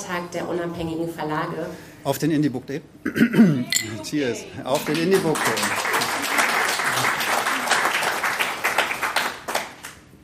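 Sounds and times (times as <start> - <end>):
speech: 0.1 - 5.9
recorded canned crowd applause: 4.7 - 10.0.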